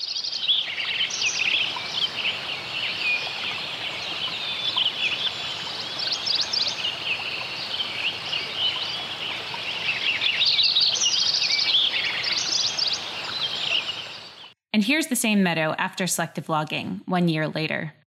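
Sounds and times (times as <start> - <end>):
dense overlapping birdsong in a meadow: 0.0 - 14.6
speech: 14.9 - 18.0.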